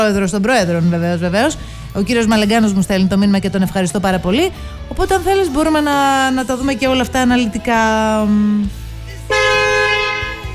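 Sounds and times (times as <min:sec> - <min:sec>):
speech: 0:00.0 - 0:08.8
bicycle horn honk: 0:09.3 - 0:10.5.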